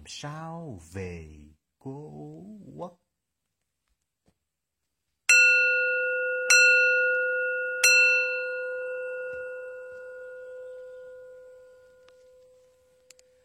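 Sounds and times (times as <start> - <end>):
speech: 0.1 - 3.0
Buddhist temple bell ringing: 5.3 - 13.2.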